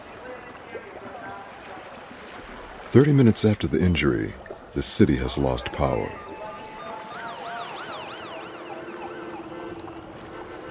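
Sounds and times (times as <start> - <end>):
speech: 2.9 - 6.2
steady rush of traffic-like noise: 4.8 - 10.7
ambulance siren wailing in rising-and-falling sweeps: 5.2 - 10.7.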